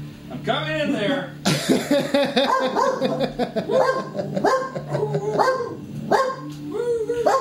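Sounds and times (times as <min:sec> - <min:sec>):
speech: 0:00.5 - 0:04.6
laughter: 0:01.5 - 0:05.8
guard dog barking: 0:02.4 - 0:06.5.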